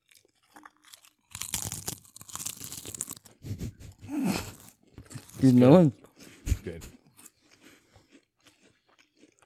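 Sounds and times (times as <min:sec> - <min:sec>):
slow crunching and chewing of chips: 0:00.0 - 0:03.4, 0:04.3 - 0:05.6, 0:07.0 - 0:09.4
speech: 0:05.4 - 0:06.0.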